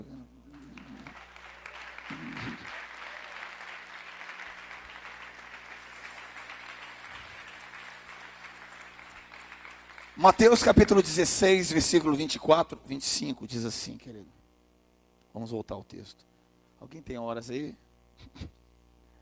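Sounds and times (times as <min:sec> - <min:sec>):
church audience applauding: 0:00.5 - 0:12.3
speech: 0:10.2 - 0:14.4, 0:15.4 - 0:18.6.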